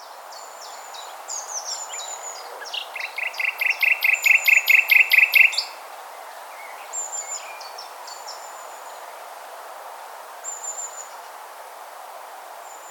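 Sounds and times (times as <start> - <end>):
Common nightingale singing in Orwell Country Park: 0.0 - 9.4, 10.4 - 11.4.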